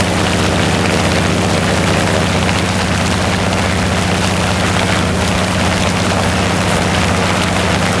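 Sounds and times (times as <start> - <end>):
close airplane engine running at 50 rpm: 0.0 - 7.9.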